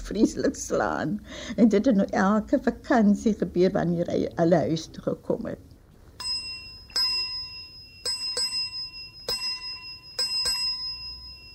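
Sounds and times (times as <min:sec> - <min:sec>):
speech: 0:00.1 - 0:05.7
small hand bell once used at a sickbed ringing: 0:06.2 - 0:11.5.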